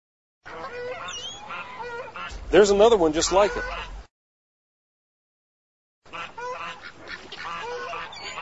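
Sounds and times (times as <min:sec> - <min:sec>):
Canada geese honking: 0:00.5 - 0:04.1, 0:06.1 - 0:08.4
speech: 0:02.3 - 0:03.9.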